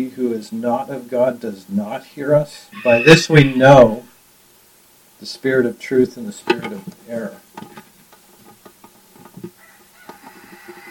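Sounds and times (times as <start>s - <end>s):
speech: 0.0s - 4.1s, 5.2s - 7.8s
roosters crowing at daybreak: 2.7s - 4.0s, 9.5s - 10.8s.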